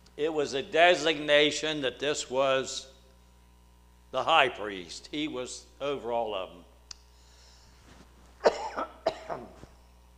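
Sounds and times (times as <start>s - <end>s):
speech: 0.2s - 2.9s, 4.1s - 6.7s
faint breath: 7.1s - 8.0s
sharp raspy coughs: 8.4s - 9.7s.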